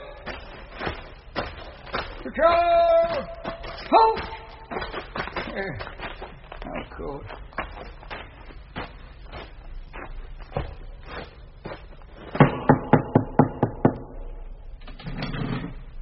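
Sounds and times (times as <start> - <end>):
speech: 2.4 - 5.0, 5.6 - 6.0, 6.8 - 7.4
loud sharp knocking on a gate: 12.4 - 14.1.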